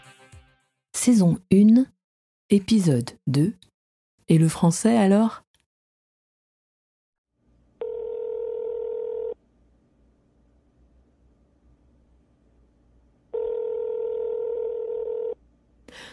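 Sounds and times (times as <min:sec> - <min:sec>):
speech: 0:01.0 - 0:03.7, 0:04.3 - 0:05.4
long steady telephone line tones: 0:07.8 - 0:09.4, 0:13.3 - 0:15.4.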